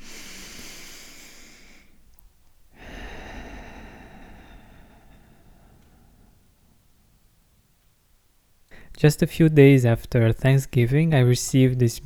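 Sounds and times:
deep breath in through the nose and out through the mouth: 0.0s - 7.3s, 8.7s - 9.0s
speech: 9.0s - 12.0s.

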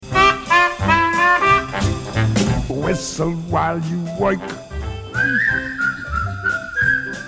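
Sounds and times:
soft instrumental accompaniment: 0.0s - 7.2s
speech: 3.0s - 4.6s, 5.2s - 5.8s
person whistling a bright wavering melody: 5.0s - 7.2s.

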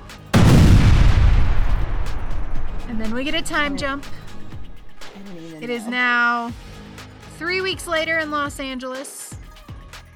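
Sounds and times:
heavy deep rumble after explosion: 0.4s - 5.7s
loud explosion: 0.4s - 5.7s
speech: 2.9s - 4.2s, 5.2s - 6.7s, 7.4s - 9.2s.

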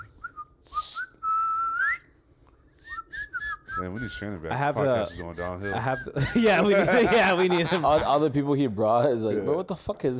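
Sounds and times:
person whistling: 0.0s - 2.1s, 2.7s - 6.2s
speech: 3.8s - 10.1s
laughter: 5.9s - 8.5s.

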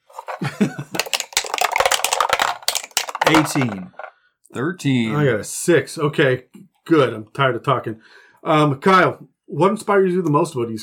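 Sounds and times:
dice clattering and tumbling across a hard surface: 0.2s - 4.1s
speech: 0.4s - 1.0s, 3.3s - 10.8s.

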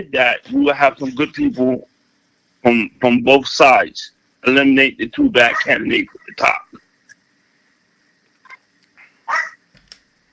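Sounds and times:
speech: 0.0s - 1.9s, 2.6s - 6.8s
faint hum: 0.0s - 10.3s
dog barking: 5.5s - 5.8s, 9.3s - 9.6s.

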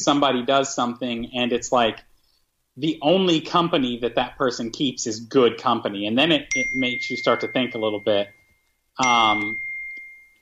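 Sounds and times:
speech: 0.0s - 2.1s, 2.8s - 8.4s, 9.0s - 9.7s
bright chime: 6.5s - 10.3s.

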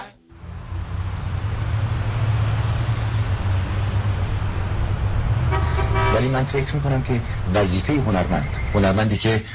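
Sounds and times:
street traffic rumble: 0.3s - 9.5s
car horn honking: 5.4s - 6.7s
speech: 6.3s - 9.5s.

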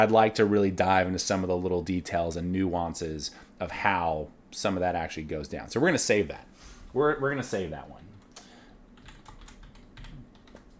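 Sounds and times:
speech: 0.0s - 8.1s
typing on a computer keyboard: 8.2s - 10.7s.

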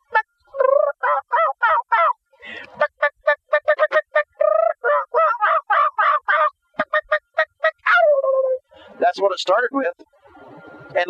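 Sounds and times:
man imitating a wild turkey call with gobbles and clucks: 0.0s - 8.6s
speech: 9.2s - 10.1s.

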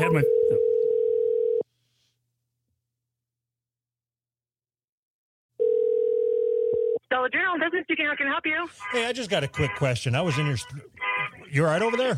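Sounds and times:
speech: 0.0s - 0.6s, 7.2s - 12.1s
telephone ringback tone: 0.0s - 1.6s, 5.6s - 7.0s.

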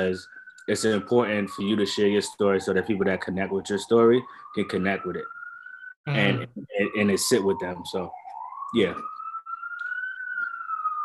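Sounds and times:
faint street noise: 0.0s - 5.3s, 6.1s - 8.1s, 8.7s - 9.0s
speech: 0.0s - 5.4s, 6.0s - 9.1s
police car siren wailing: 0.0s - 11.0s.

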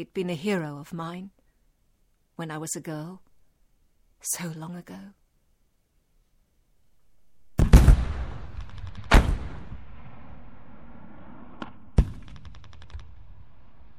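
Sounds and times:
speech: 0.0s - 1.4s, 2.4s - 3.3s, 4.2s - 5.2s
sharp gunshot cracks: 7.6s - 13.4s
distant gunfire and heavy artillery blasts: 7.6s - 13.9s.

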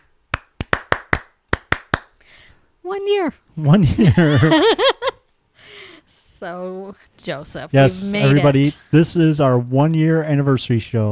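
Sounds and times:
hands clapping: 0.0s - 2.2s
speech: 2.8s - 5.0s, 6.4s - 11.1s
laughter: 3.6s - 5.2s, 7.9s - 8.8s.

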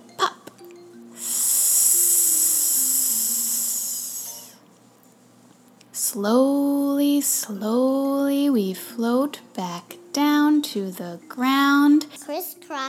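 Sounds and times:
long breathy exhale: 1.2s - 4.6s
speech: 6.1s - 9.9s, 10.8s - 12.8s.

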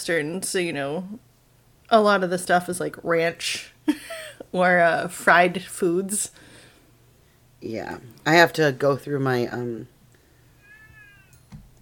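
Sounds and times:
speech: 0.0s - 1.3s, 1.9s - 6.5s, 7.6s - 9.9s
cat meowing: 10.6s - 11.4s.

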